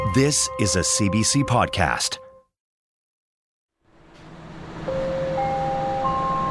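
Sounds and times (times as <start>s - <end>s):
speech: 0.1s - 2.3s
rising three-note SkyTrain departure chime in Metro Vancouver: 4.9s - 6.4s.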